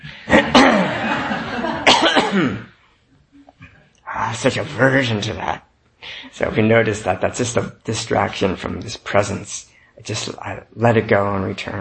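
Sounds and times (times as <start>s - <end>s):
rasping throat clearing: 0.2s - 1.0s, 1.9s - 2.8s
laughter: 0.2s - 1.9s
person coughing: 0.3s - 1.2s, 1.8s - 2.8s
speech: 2.4s - 2.7s, 4.3s - 11.7s.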